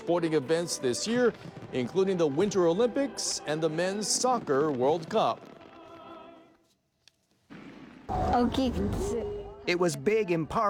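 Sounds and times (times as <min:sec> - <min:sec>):
speech: 0:00.0 - 0:05.5, 0:08.4 - 0:10.6
fireworks exploding in booming bursts: 0:00.7 - 0:06.5, 0:07.5 - 0:09.3.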